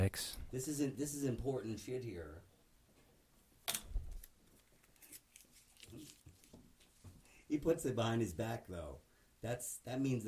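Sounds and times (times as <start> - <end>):
speech: 0.0 - 2.5, 5.9 - 6.2, 7.5 - 10.2
paper ripping and rustling: 4.2 - 6.6.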